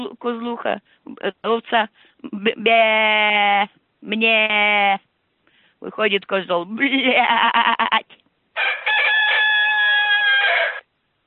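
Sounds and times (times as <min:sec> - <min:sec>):
speech: 0:00.0 - 0:05.1, 0:05.8 - 0:08.8
rooster crowing in a henhouse: 0:08.6 - 0:10.9.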